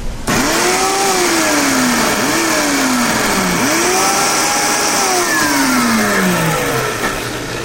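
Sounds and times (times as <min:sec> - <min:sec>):
blender motor pureeing seeded fruit with water: 0:00.3 - 0:07.4.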